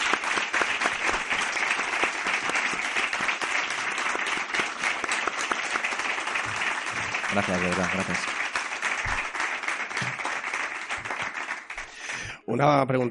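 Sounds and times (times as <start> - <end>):
audience applause: 0.0 - 12.3
speech: 7.3 - 8.4, 12.5 - 13.0.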